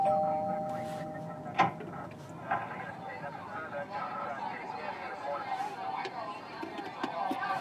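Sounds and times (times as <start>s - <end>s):
doorbell chime: 0.0s - 1.2s
voices: 0.0s - 7.6s.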